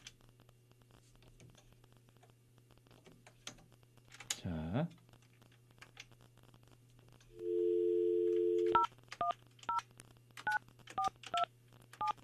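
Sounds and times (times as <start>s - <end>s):
speech: 4.4s - 5.0s
telephone dial tone: 7.4s - 8.9s
telephone keypad beeps: 8.0s - 9.8s, 10.4s - 12.2s.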